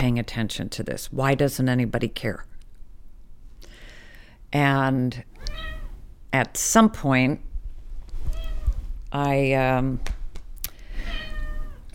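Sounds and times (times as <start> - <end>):
speech: 0.0 - 2.5, 4.5 - 5.7, 6.3 - 7.5, 9.1 - 10.2
cat meowing: 5.4 - 6.0, 8.3 - 8.8, 11.0 - 11.9.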